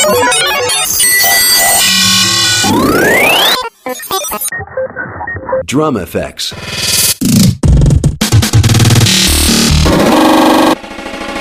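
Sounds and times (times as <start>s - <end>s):
choppy stuttering glitch bursts: 0.0s - 5.6s, 6.5s - 10.8s
layered electronic bleeps: 0.0s - 5.7s
speech: 0.1s - 1.0s, 5.7s - 6.9s.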